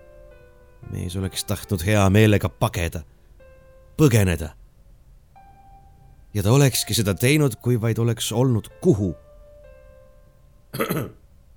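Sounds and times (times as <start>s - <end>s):
speech: 0.9s - 3.1s, 4.0s - 4.6s, 6.3s - 9.2s, 10.7s - 11.2s
man clearing his throat in an empty corridor: 10.7s - 11.2s.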